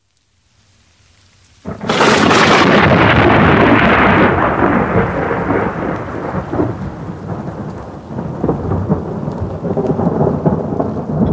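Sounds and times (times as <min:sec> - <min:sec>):
steady heavy rain pouring: 0:00.0 - 0:11.3
loud crack of thunder rolling into a long rumble: 0:01.6 - 0:11.3.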